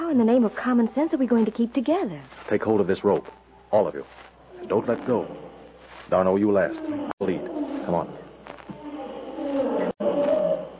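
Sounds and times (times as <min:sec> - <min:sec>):
speech: 0:00.1 - 0:05.5, 0:06.1 - 0:08.2
lion roaring in a dark jungle at night: 0:06.6 - 0:10.7.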